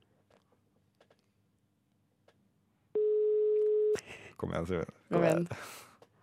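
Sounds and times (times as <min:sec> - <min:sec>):
telephone ringback tone during a call: 0:03.0 - 0:04.0
speech: 0:04.4 - 0:05.9.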